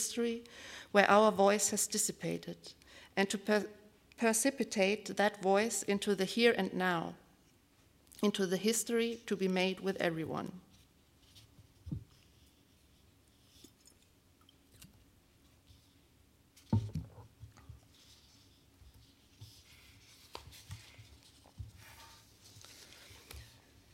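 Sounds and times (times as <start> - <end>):
speech: 0.0 - 7.2, 8.2 - 10.6
soft brushing and rustling from loudspeakers: 10.6 - 14.1, 15.4 - 23.9.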